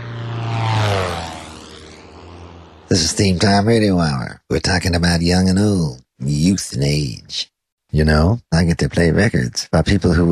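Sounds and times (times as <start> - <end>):
airplane propeller engine droning during a skydiving jump: 0.0 - 4.2
speech: 2.9 - 10.2.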